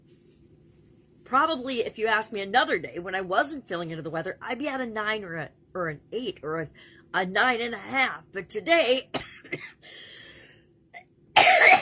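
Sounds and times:
speech: 0:01.3 - 0:10.1
person with a cold coughing: 0:09.1 - 0:09.8, 0:11.4 - 0:11.7.

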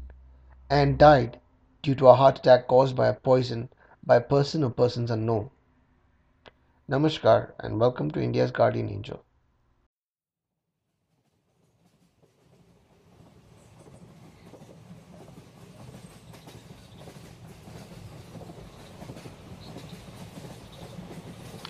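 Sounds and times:
speech: 0:00.7 - 0:05.6, 0:06.9 - 0:09.2
train wheels clickety-clack along the rails: 0:11.2 - 0:21.6
deep continuous low roar of a train: 0:12.4 - 0:21.6.

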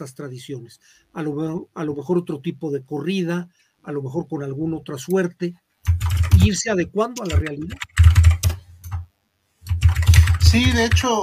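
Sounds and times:
speech: 0:00.0 - 0:08.0, 0:10.5 - 0:11.2
rapid typing on a computer keyboard: 0:05.8 - 0:06.5, 0:07.2 - 0:11.2.

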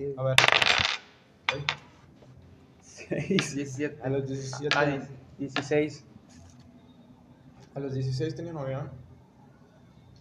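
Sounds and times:
speech: 0:00.0 - 0:01.8, 0:03.1 - 0:06.1, 0:07.8 - 0:09.0
dice rattling and tumbling on a hard surface: 0:00.4 - 0:01.9.

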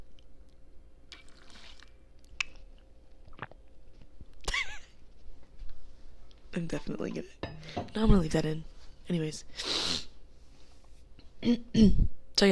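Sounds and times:
low steady hum: 0:00.0 - 0:12.5
wet mouth clicks: 0:00.2 - 0:03.6
person drinking water and swallowing: 0:01.1 - 0:03.8
speech: 0:06.6 - 0:10.1, 0:11.4 - 0:12.5.

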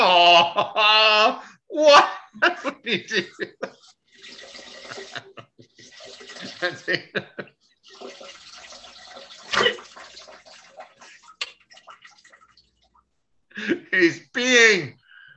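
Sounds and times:
laughter: 0:00.0 - 0:03.9, 0:04.7 - 0:07.6
speech: 0:00.2 - 0:05.5, 0:06.4 - 0:08.1, 0:13.6 - 0:15.0
stream of liquid splashing into a toilet bowl with the seat up: 0:04.0 - 0:06.9, 0:07.8 - 0:13.1.

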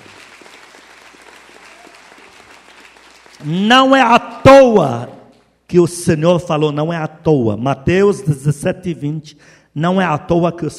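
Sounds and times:
audience applauding: 0:00.0 - 0:03.6
speech: 0:03.4 - 0:05.1, 0:05.7 - 0:10.7.

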